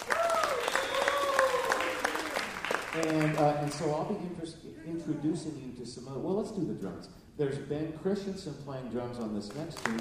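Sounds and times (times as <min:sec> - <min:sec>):
audience applauding: 0:00.0 - 0:03.9, 0:09.5 - 0:10.0
audience whoops and whistles: 0:00.1 - 0:01.8
speech: 0:03.0 - 0:10.0.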